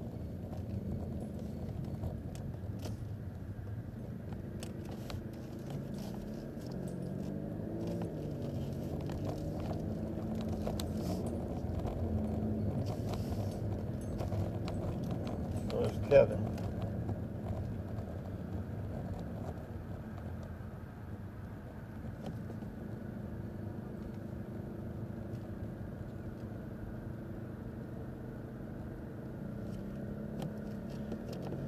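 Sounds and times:
truck engine rumbling outside: 0:00.0 - 0:31.6
speech: 0:16.1 - 0:16.4.

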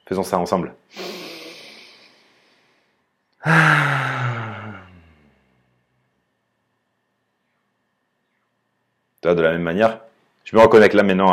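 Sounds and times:
speech: 0:00.1 - 0:01.1, 0:09.2 - 0:11.3
deep breath: 0:00.9 - 0:05.9.

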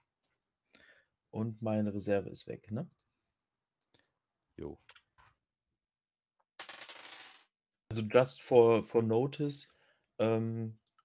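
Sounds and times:
speech: 0:01.3 - 0:03.0, 0:04.6 - 0:05.0, 0:07.9 - 0:10.8
dice clattering across a hard surface: 0:06.6 - 0:07.4.

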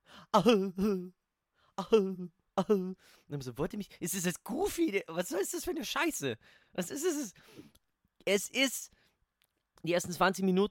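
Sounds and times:
speech: 0:00.3 - 0:01.2, 0:01.8 - 0:09.0, 0:09.8 - 0:10.7
voice imitating exaggerated loud crying of an actor: 0:00.3 - 0:01.2, 0:01.8 - 0:03.0.

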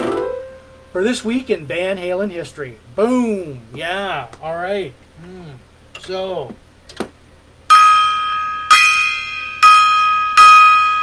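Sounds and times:
speech: 0:00.9 - 0:06.6
gong being struck: 0:07.7 - 0:11.0.

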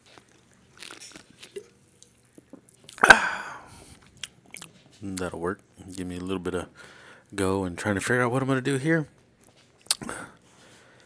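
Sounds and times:
short wet slurp of soda: 0:00.0 - 0:04.7
faint clicks and small mouth noises: 0:00.0 - 0:06.0, 0:09.4 - 0:10.7
speech: 0:05.0 - 0:09.2.

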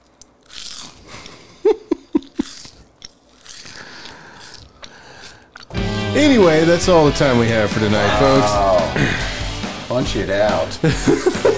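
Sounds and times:
person biting and chewing crisp food: 0:00.0 - 0:05.8
laughter: 0:05.9 - 0:11.5
speech: 0:06.2 - 0:09.2, 0:10.0 - 0:11.5.

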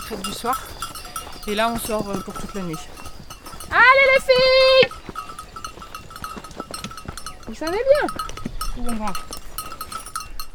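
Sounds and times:
rustle of ewes being herded into a pen: 0:00.0 - 0:10.5
sheep bells clinking: 0:00.0 - 0:10.5
speech: 0:00.1 - 0:00.8, 0:01.4 - 0:03.0, 0:03.7 - 0:05.1, 0:07.5 - 0:08.2, 0:08.8 - 0:09.4
ewe bleating while herded into a pen: 0:03.6 - 0:05.0.

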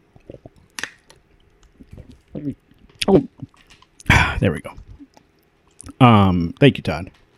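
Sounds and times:
person swallowing water: 0:00.1 - 0:00.6, 0:01.8 - 0:05.2
person sipping water: 0:00.1 - 0:00.7, 0:01.7 - 0:02.4
speech: 0:02.4 - 0:03.3, 0:04.4 - 0:04.8, 0:06.0 - 0:07.2.

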